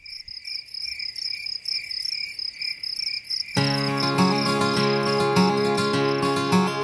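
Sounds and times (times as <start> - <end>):
crickets chirping: 0.0 - 6.8.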